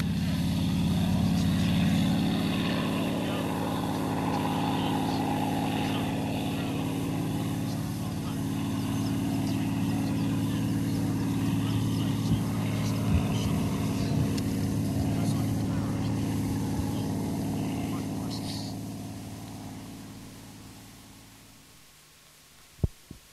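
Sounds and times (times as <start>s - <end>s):
Mustang aircraft piston engine droning: 0.0s - 21.6s.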